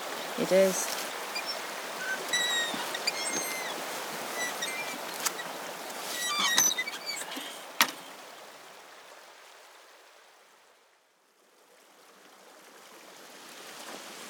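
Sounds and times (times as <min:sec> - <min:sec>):
birdsong: 0:00.0 - 0:08.5
sharper water splashes: 0:00.0 - 0:08.8
shallow broad river babbling over boulders: 0:00.0 - 0:10.2
speech: 0:00.4 - 0:01.1.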